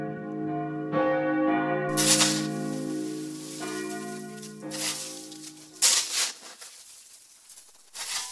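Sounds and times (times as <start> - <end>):
church bells pealing outdoors: 0.0 - 5.8.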